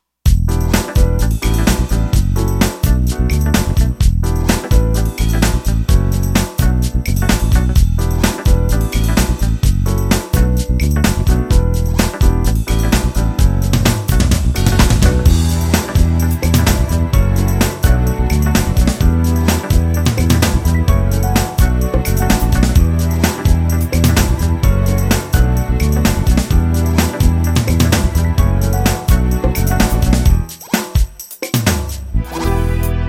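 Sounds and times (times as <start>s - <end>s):
sixteenth-note funk drum beat: 0.3s - 32.9s.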